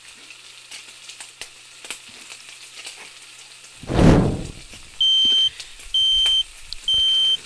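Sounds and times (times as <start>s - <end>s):
French fries frying in hot oil in a skillet: 0.0s - 3.8s, 4.6s - 7.4s
piercing alarm beeps: 5.0s - 7.4s.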